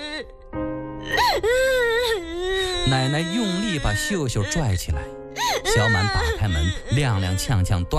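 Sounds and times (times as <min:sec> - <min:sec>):
girl crying in an acted drama scene: 0:00.0 - 0:00.3, 0:01.1 - 0:04.8, 0:05.4 - 0:07.4
speech: 0:02.8 - 0:05.2, 0:05.8 - 0:07.9.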